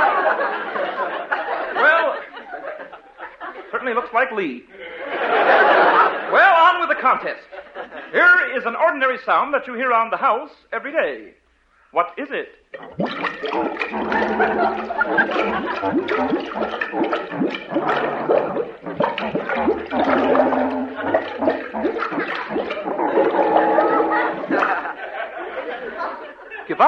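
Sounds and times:
laughter: 0.0 - 4.0, 4.7 - 8.2, 13.9 - 16.9, 19.5 - 26.8
speech: 3.9 - 7.5, 8.1 - 22.7
underwater bubbling and gurgling: 12.8 - 24.8
clarinet melody played underwater: 23.0 - 24.4.

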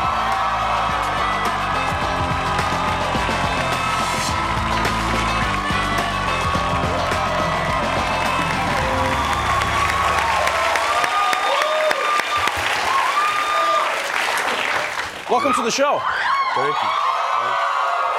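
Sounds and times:
excited high-pitched screams and whoops from the audience: 0.0 - 14.1, 15.3 - 18.1
talk-show audience applause welcoming a guest actor: 0.0 - 18.1
band playing: 1.0 - 11.0
speech: 15.4 - 17.1.

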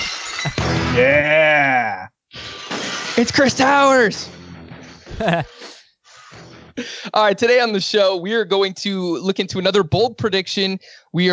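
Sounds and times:
tinkling glass shards: 0.0 - 0.6
glass shattering: 0.0 - 1.0, 2.4 - 3.7
speech: 0.4 - 2.1, 3.2 - 4.4, 5.2 - 5.8, 6.8 - 11.3.

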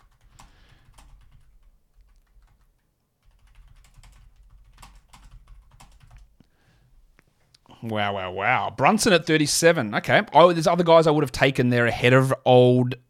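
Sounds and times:
typing on a computer keyboard: 0.0 - 6.3
speech: 7.8 - 13.0.

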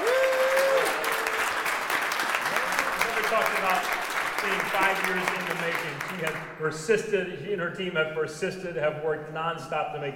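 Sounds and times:
crowd applause: 0.0 - 6.5
speech: 3.4 - 10.1.

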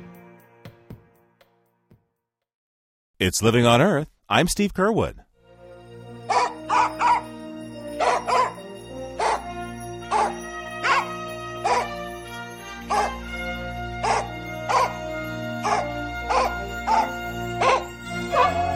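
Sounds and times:
speech: 3.3 - 5.2
Soviet space dog barking: 6.3 - 7.3, 8.0 - 8.6, 9.2 - 9.5, 10.1 - 12.0, 12.9 - 13.2, 14.0 - 18.6.

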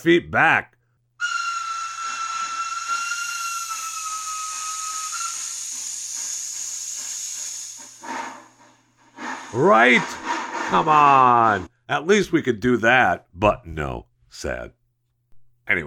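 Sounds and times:
speech: 0.0 - 0.8, 9.5 - 14.8, 15.7 - 15.8
steam locomotive whistle blowing: 1.2 - 8.0
steam locomotive steam hissing: 1.2 - 11.6
steam locomotive chuffing: 1.2 - 11.7.

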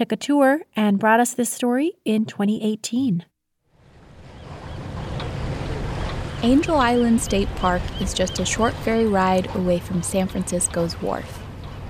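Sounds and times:
speech: 0.0 - 3.3, 6.4 - 11.4
waves washing on San Francisco Bay: 3.7 - 11.8
wind noise: 3.8 - 11.8.

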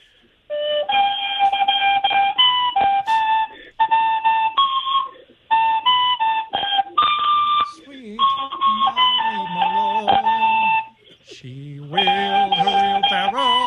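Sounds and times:
Irish tin whistle playing a lilting folk melody: 0.0 - 13.6
lower voice singing along with the tune: 7.7 - 13.6.

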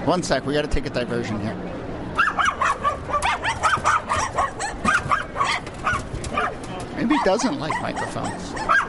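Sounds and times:
speech: 0.1 - 1.8, 7.2 - 8.8
small Tibetan terrier barking: 2.2 - 8.8.

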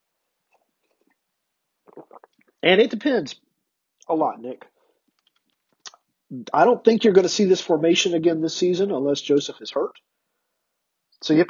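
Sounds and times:
sipping coffee: 1.8 - 2.6
speech: 2.6 - 3.5, 4.1 - 4.7, 6.3 - 10.1, 11.2 - 11.4.

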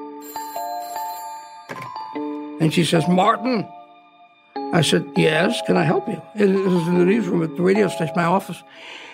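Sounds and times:
old-fashioned telephone bell ringing at night: 0.0 - 2.3
speech: 2.6 - 3.8, 4.7 - 9.1.

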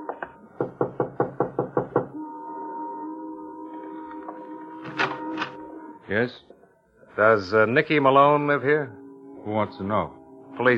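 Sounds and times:
firm knocking on a house door: 0.6 - 2.2
speech: 6.1 - 6.5, 7.2 - 10.7.

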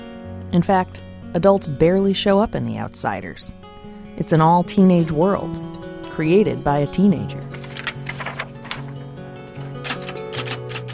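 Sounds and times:
speech: 0.5 - 7.6
low tonal hum: 5.0 - 8.8
antique Underwood manual typewriter clacking: 7.6 - 9.0, 9.6 - 10.9.

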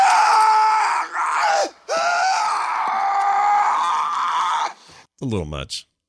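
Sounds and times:
man screaming in a movie scream recording on a soundstage: 0.0 - 4.8
speech: 5.2 - 5.9.

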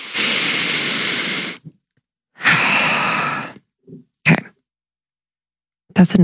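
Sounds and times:
deep breath inhale and exhale: 0.0 - 1.8, 2.4 - 3.6
speech: 6.0 - 6.2.

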